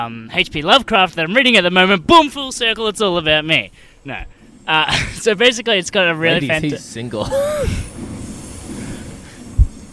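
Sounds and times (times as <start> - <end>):
speech: 0.0 - 8.1
train rumbling: 1.6 - 9.9.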